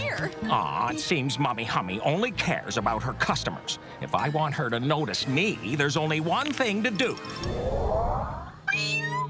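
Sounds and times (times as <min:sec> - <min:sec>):
speech: 0:00.2 - 0:07.8
cats meowing: 0:08.1 - 0:09.2.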